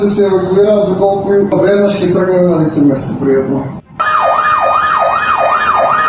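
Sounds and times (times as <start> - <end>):
speech: 0.0 - 3.8
fire engine siren wailing as fire trucks respond to a fire at a kindergarten: 3.9 - 6.0.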